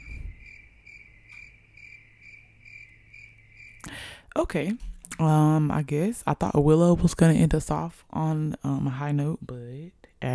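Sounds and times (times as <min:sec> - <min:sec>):
crickets chirping: 0:00.0 - 0:04.3
low hum: 0:00.0 - 0:09.0
speech: 0:03.8 - 0:10.3.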